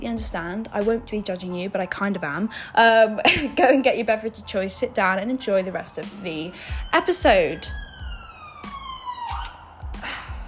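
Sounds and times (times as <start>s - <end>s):
speech: 0.0s - 7.8s
police siren passing in London: 5.5s - 10.4s.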